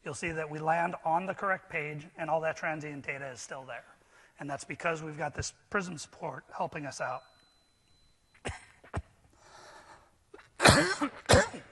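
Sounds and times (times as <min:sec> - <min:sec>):
speech: 0:00.1 - 0:07.3, 0:10.8 - 0:11.6
person coughing: 0:08.4 - 0:09.0, 0:10.4 - 0:11.6.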